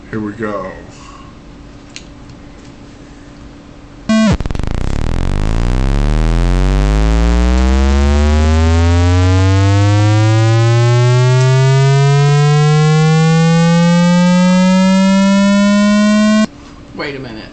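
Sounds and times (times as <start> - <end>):
racing car engine revving in first gear: 4.1 - 16.5.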